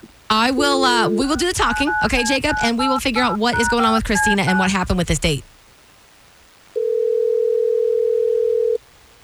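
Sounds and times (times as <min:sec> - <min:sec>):
speech: 0:00.3 - 0:05.5
telephone ring tone as a phone call is placed: 0:00.8 - 0:04.7, 0:06.8 - 0:08.8.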